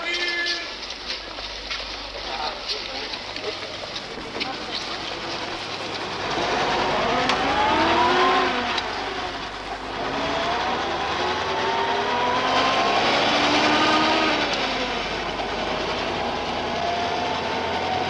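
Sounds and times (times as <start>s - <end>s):
voices: 0.0s - 6.4s
road noise: 0.0s - 18.0s
taxi engine roaring while speeding: 0.0s - 18.0s.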